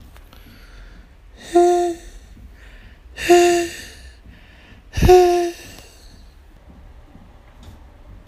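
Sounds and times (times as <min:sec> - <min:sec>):
person singing pure falsetto: 0:01.4 - 0:02.2, 0:05.0 - 0:06.0.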